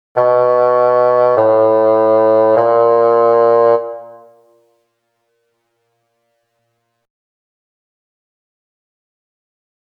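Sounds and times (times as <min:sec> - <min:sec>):
bassoon: 0:00.2 - 0:04.6.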